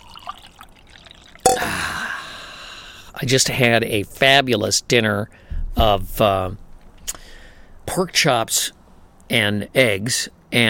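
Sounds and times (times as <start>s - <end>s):
coffee pouring into a cup: 0.0s - 1.5s
speech: 3.2s - 7.2s, 7.9s - 10.6s.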